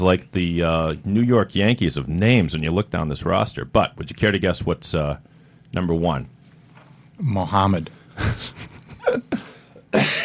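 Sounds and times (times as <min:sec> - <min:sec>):
speech: 0:00.0 - 0:06.4, 0:07.2 - 0:10.1
person coughing from laughing: 0:09.3 - 0:10.2.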